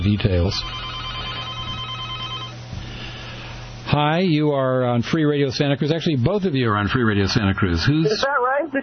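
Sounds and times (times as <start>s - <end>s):
speech: 0.0s - 1.0s, 3.9s - 8.8s
telephone ringing with buzzy electronic tone: 0.3s - 2.6s.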